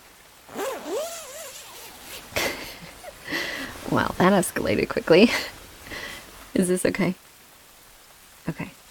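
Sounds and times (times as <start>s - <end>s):
sleeping bag zipper being zipped up: 0.5s - 3.2s
soft fabric rustling: 0.5s - 4.3s
speech: 3.9s - 5.6s, 6.6s - 7.2s, 8.5s - 8.7s.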